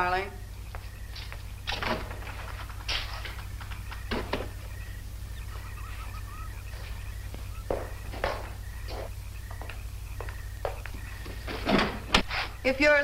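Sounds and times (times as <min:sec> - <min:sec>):
speech: 0:00.0 - 0:00.4, 0:12.7 - 0:13.0
steady low electrical hum: 0:00.0 - 0:13.0
door shutting: 0:01.6 - 0:04.6, 0:11.4 - 0:12.4.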